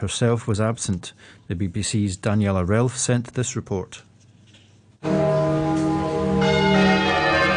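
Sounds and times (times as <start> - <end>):
speech: 0.0 - 4.1
large deep cathedral church bell pealing: 5.0 - 7.5.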